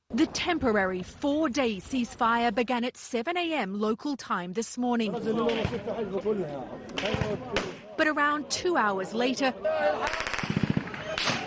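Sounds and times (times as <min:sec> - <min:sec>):
speech: 0:00.2 - 0:10.3
automatic gunfire in Gaza during a temporary ceasefire: 0:10.1 - 0:11.4.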